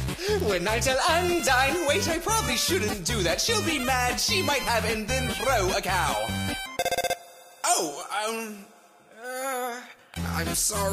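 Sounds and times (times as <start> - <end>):
speech: 0.3 - 6.6, 7.8 - 8.7, 10.4 - 10.9
video game phone ringing: 6.6 - 7.6.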